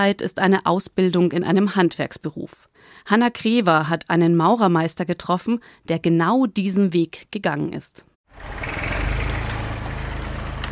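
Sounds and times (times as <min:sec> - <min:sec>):
speech: 0:00.0 - 0:09.0
heavy diesel excavator engine rumbling at a construction site: 0:08.3 - 0:10.7.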